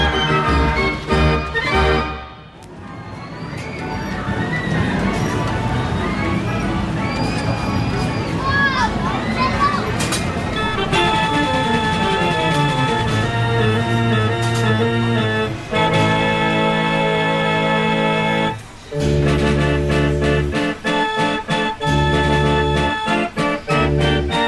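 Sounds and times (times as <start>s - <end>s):
fairground ride or organ-like music with a regular thumping beat: 0.0s - 2.2s, 10.6s - 24.4s
fairground crowd voices and chatter: 0.0s - 24.4s.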